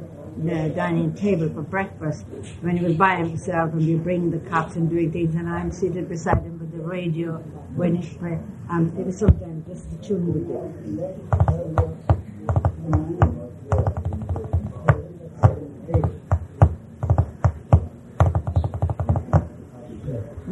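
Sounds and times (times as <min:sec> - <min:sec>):
speech: 0:00.4 - 0:12.1
all fingers tapping on a hard surface: 0:11.3 - 0:19.5.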